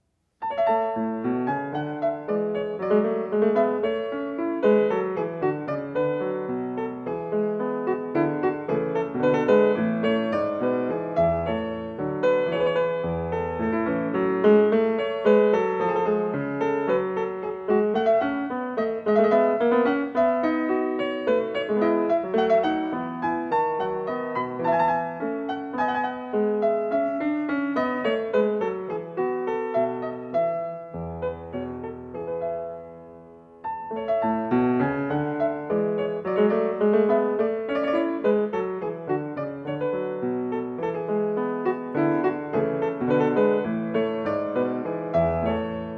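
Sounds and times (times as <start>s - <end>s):
courante dance piece: 0.0s - 45.9s.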